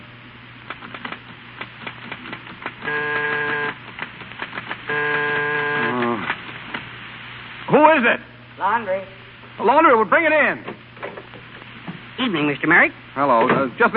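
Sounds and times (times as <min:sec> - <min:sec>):
constant low hum: 0:00.0 - 0:13.9
rapid clattering typewriter keystrokes: 0:00.7 - 0:06.0
loud steady buzzing tone: 0:02.8 - 0:04.0, 0:04.6 - 0:07.8
speech: 0:08.0 - 0:10.7, 0:12.2 - 0:13.9.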